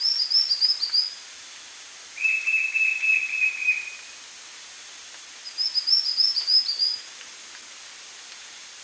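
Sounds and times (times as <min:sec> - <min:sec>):
White-shouldered fire-eye Pyriglena leucoptera song: 0:00.0 - 0:01.2, 0:02.2 - 0:04.2, 0:05.4 - 0:07.1.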